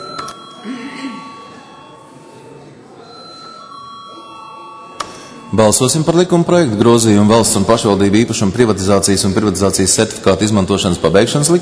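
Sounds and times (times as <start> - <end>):
parliamentary electronic bell ringing before a vote: 0.0 - 7.9
faint voices murmuring: 0.0 - 11.6
speech: 5.5 - 11.6.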